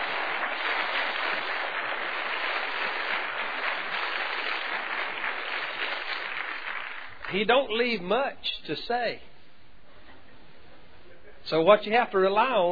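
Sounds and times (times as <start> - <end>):
congregation clapping at a preaching service: 0.0 - 7.6
speech: 7.3 - 9.3, 11.5 - 12.6.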